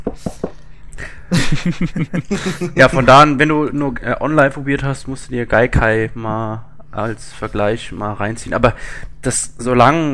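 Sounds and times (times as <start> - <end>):
knocking on a hard surface: 0.0 - 0.6
loud voices or laughter: 1.3 - 3.0
speech: 1.3 - 10.1.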